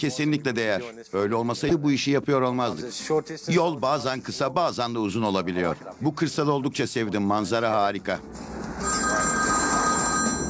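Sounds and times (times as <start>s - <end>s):
speech: 0.0s - 9.0s
telephone bell ringing for an incoming call: 8.8s - 10.4s.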